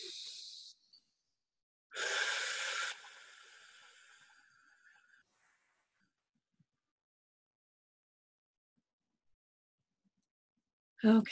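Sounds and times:
deep breathing in a guided breathing exercise: 2.0 - 5.8.

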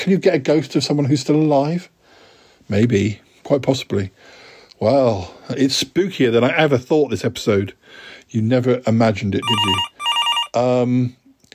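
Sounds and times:
speech: 0.0 - 2.0, 2.7 - 9.9, 10.5 - 11.2
telephone ringing with electronic tone: 9.4 - 10.6.

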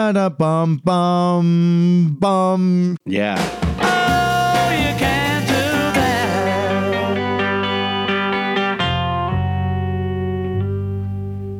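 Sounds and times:
speech: 0.0 - 5.5
electric guitar chord strikes and ringing note with heavy echo: 3.2 - 11.5.

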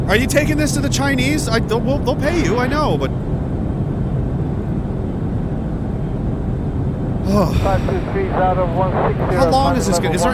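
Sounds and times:
speech: 0.1 - 3.3, 7.4 - 10.3
F-35 fighter jet engine roaring: 1.6 - 6.5, 7.5 - 10.3.

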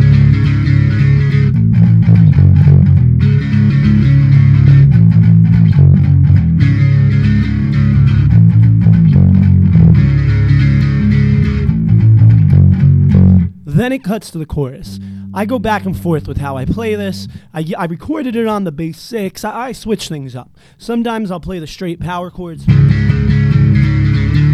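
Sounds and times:
distorted electric guitar riff with reverb: 0.0 - 14.2, 14.8 - 17.5, 22.6 - 24.5
speech: 13.8 - 23.4.

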